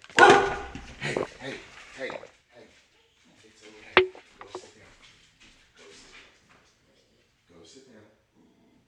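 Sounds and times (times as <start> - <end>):
older dog barking: 0.2 - 1.2
voices: 3.5 - 4.7.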